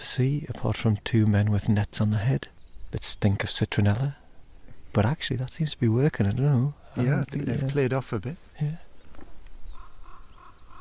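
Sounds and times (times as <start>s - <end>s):
speech: 0.1s - 4.2s, 5.0s - 8.9s
raven croaking from a distance: 8.9s - 10.8s.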